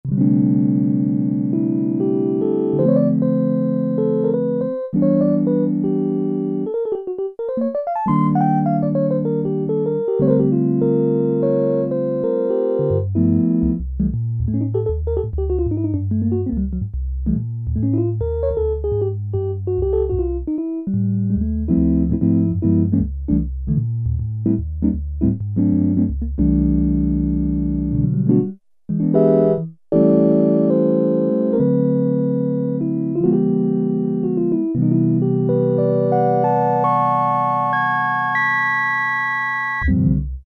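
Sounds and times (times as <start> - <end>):
electric piano patch on a synthesizer: 0.1 - 40.4.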